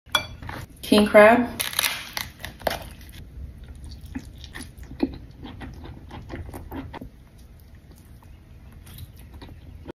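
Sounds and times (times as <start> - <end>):
person eating crab: 1.7 - 8.3.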